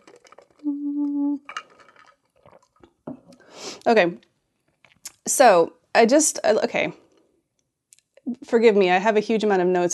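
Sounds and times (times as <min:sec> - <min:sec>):
person sipping water: 0:00.0 - 0:03.9
speech: 0:03.8 - 0:04.3, 0:05.3 - 0:07.0, 0:08.3 - 0:09.9.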